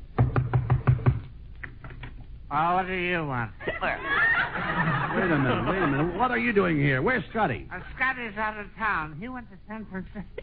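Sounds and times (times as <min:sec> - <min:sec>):
knocking on a door: 0:00.2 - 0:01.2
speech: 0:02.5 - 0:10.4
laughter: 0:03.6 - 0:06.5.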